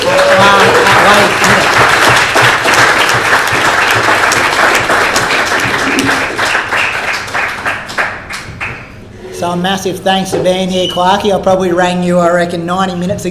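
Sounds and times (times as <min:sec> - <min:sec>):
audience applause: 0:00.0 - 0:09.0
speech: 0:09.5 - 0:13.3.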